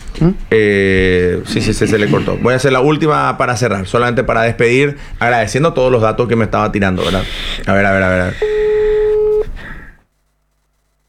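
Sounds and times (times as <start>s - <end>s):
speech: 0.2s - 8.6s
telephone call tone while a number is dialed: 8.4s - 9.5s.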